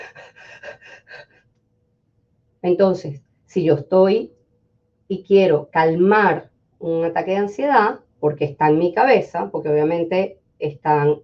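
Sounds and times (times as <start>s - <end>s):
person demonstrating rapid gasping stressed breathing: 0.0s - 1.4s
speech: 2.6s - 4.4s, 5.1s - 11.2s.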